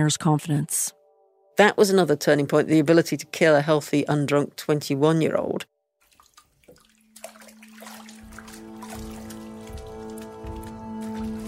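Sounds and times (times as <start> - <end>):
speech: 0.0 - 1.0, 1.6 - 5.7
water sloshing as an old woman washes clothing by hand: 6.0 - 11.4.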